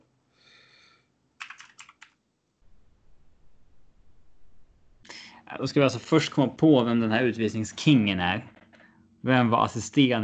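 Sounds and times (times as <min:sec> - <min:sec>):
computer keyboard typing: 0:01.4 - 0:02.2
low hum: 0:02.5 - 0:10.2
speech: 0:05.5 - 0:08.6, 0:09.2 - 0:10.2.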